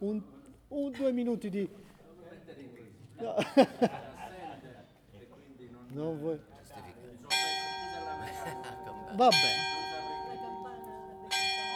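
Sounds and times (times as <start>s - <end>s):
speech: 0.0s - 1.9s, 3.2s - 4.1s, 6.0s - 6.5s, 9.1s - 9.7s
laughter: 3.2s - 4.9s, 8.0s - 10.8s
church bell ringing: 7.3s - 11.7s.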